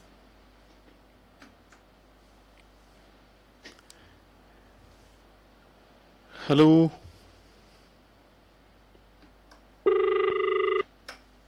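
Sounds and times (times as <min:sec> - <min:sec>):
speech: 0:06.5 - 0:07.0
steady electronic tone of a phone line cutting off: 0:09.9 - 0:10.8.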